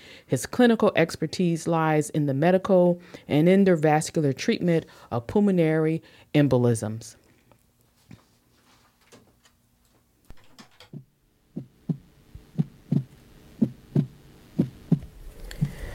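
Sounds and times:
speech: 0:00.3 - 0:07.2
heartbeat with low lub-dub thumps: 0:11.0 - 0:15.9.

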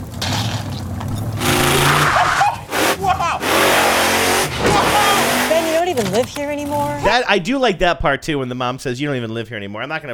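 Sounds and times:
big truck engines rumbling and revving behind a home: 0:00.0 - 0:06.9
speech: 0:06.0 - 0:10.1.

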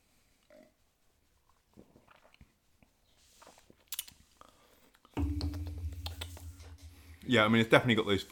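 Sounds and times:
person gulping beer: 0:01.7 - 0:02.5
speech: 0:07.3 - 0:08.3.

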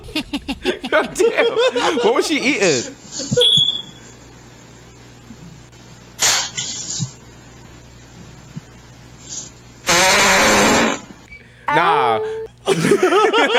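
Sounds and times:
laughter: 0:00.0 - 0:03.4, 0:12.6 - 0:13.5
speech: 0:00.4 - 0:03.6
loud fart: 0:06.2 - 0:07.2, 0:09.3 - 0:11.2.

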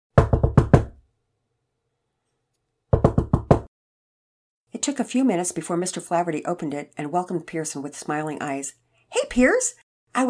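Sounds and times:
knocking on the wooden front door of a gray two-story house: 0:00.2 - 0:01.0, 0:02.9 - 0:03.7
speech: 0:04.8 - 0:10.2.

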